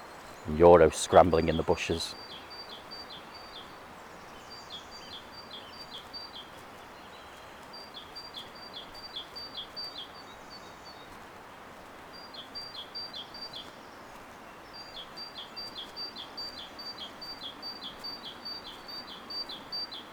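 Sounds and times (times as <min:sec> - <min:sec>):
bird singing by a river: 0:00.0 - 0:11.1, 0:12.1 - 0:13.7, 0:14.6 - 0:20.1
flowing river water: 0:00.0 - 0:20.1
speech: 0:00.5 - 0:02.4.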